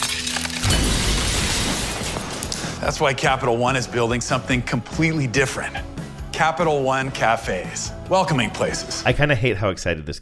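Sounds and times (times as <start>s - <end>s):
tinkling scattering glass shards: 0.0s - 2.2s
glass shattering loudly: 0.0s - 2.8s
speech: 2.8s - 10.1s.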